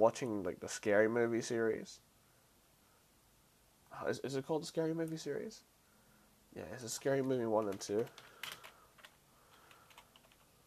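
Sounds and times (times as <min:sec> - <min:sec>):
speech: 0:00.0 - 0:02.1, 0:03.9 - 0:05.7, 0:06.5 - 0:08.6
typing on a computer keyboard: 0:07.2 - 0:10.6.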